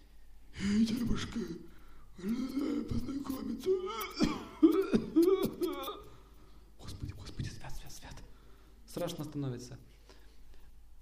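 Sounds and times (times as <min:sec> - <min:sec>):
speech: 0:00.6 - 0:04.9, 0:09.0 - 0:09.9
voice imitating a monster's hoarse wheezy breathing: 0:00.6 - 0:06.3
rough cough-like bursts: 0:02.2 - 0:06.3.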